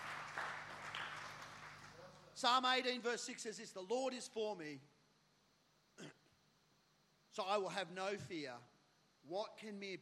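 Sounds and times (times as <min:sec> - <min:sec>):
audience clapping: 0:00.0 - 0:02.4
speech: 0:02.4 - 0:04.9, 0:07.4 - 0:09.9.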